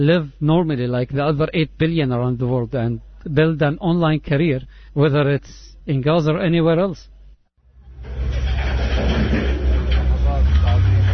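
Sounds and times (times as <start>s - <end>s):
speech: 0.0s - 7.1s
heavy earth movers in Gaza City grinding through piles of waste: 7.9s - 11.1s.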